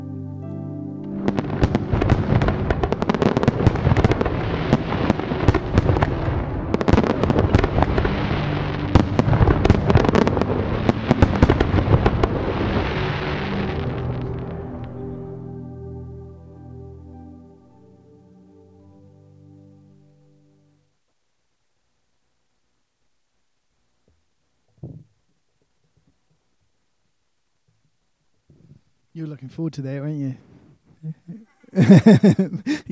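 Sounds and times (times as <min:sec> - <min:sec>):
fireworks exploding: 0:01.0 - 0:15.0
speech: 0:29.2 - 0:32.9
laughter: 0:31.0 - 0:32.9.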